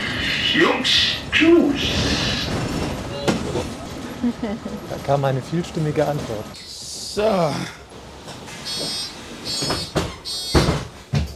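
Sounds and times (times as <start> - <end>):
bus doors closing: 0.0 - 6.6, 8.0 - 11.3
speech: 0.6 - 2.6, 4.2 - 7.9
pneumatic hisses and thumps of a bus: 8.5 - 11.1.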